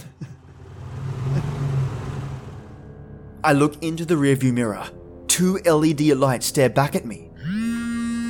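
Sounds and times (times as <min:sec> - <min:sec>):
car engine revving: 0:00.0 - 0:03.0
speech: 0:03.4 - 0:07.3.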